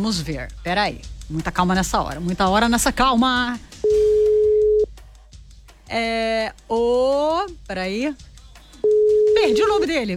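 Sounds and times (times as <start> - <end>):
speech: 0.0 - 4.0, 5.9 - 10.1
telephone ringing tones on an outgoing call: 3.8 - 4.9, 8.9 - 9.8.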